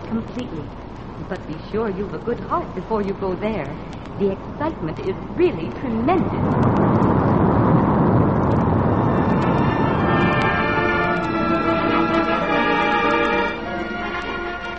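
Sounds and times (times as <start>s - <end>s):
speech: 0.1s - 7.3s
roaring waterfall with rushing, crashing water: 3.8s - 14.7s
tonal music-like lines: 8.5s - 14.7s.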